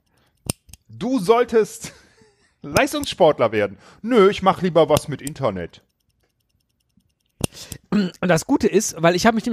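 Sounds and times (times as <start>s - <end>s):
stopwatch buttons clicking to start, stop and reset to zero: 0.0s - 0.9s, 2.7s - 3.2s, 4.7s - 8.2s
speech: 1.0s - 2.0s, 2.6s - 5.9s, 7.6s - 9.5s.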